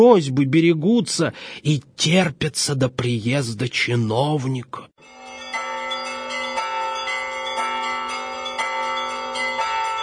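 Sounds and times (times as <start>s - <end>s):
speech: 0.0s - 5.2s
small bell ringing loudly: 5.0s - 10.0s.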